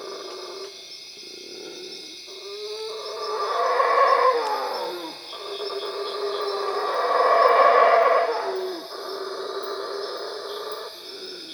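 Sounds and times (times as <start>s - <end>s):
howler monkey roaring: 2.4s - 10.9s.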